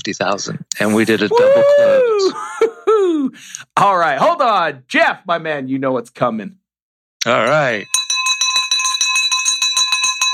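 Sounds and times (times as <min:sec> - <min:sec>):
speech: 0:00.0 - 0:06.6, 0:07.2 - 0:08.0
victory bell ringing rapidly: 0:07.4 - 0:10.3.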